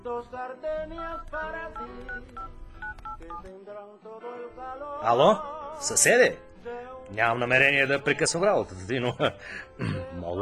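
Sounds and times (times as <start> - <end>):
speech: 0.0 - 10.3
telephone keypad tones as a number is dialed: 1.2 - 3.4.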